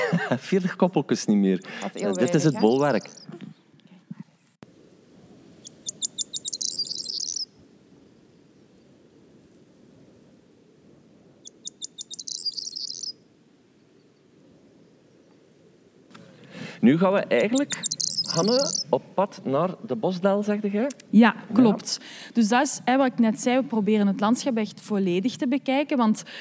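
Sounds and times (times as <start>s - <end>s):
laughter: 0.0s - 3.5s, 16.2s - 19.6s
speech: 0.1s - 3.4s, 16.8s - 26.4s
rare bird's dry rattling call in Flanders: 5.6s - 7.5s, 11.5s - 13.2s, 17.4s - 19.0s.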